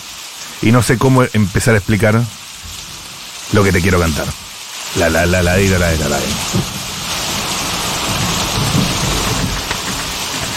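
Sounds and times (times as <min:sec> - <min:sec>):
steady heavy rain hissing on surfaces: 0:00.0 - 0:10.5
speech: 0:00.6 - 0:02.4, 0:03.5 - 0:06.8
low thunder rumbling: 0:02.6 - 0:10.5.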